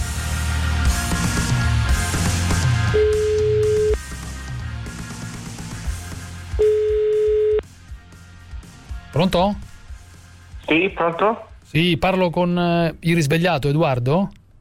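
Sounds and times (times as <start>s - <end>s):
music: 0.0s - 14.6s
telephone dial tone as a number is called: 3.0s - 4.0s, 6.6s - 7.6s
speech: 9.2s - 9.6s, 10.7s - 14.4s.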